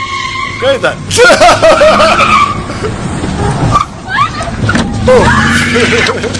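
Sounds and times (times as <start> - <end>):
truck engine roaring while driving into protesters: 0.0 - 6.3
truck tires squealing and skidding: 0.0 - 6.3
speech: 0.6 - 3.0, 5.1 - 6.3
laughter: 1.1 - 3.0, 5.1 - 6.3
protesters shouting with raised voices: 4.0 - 6.2.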